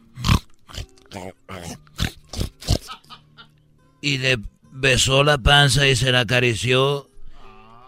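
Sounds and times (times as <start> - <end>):
person imitating a pig with nasal grunts and snorts: 0.1 - 3.0, 7.5 - 7.8
speech: 1.2 - 1.8, 4.0 - 7.1.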